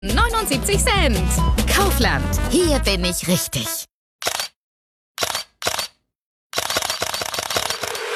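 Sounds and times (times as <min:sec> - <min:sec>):
speech: 0:00.0 - 0:04.3
camera shutter clicking in burst mode: 0:04.2 - 0:04.6, 0:05.2 - 0:06.0, 0:06.6 - 0:08.1.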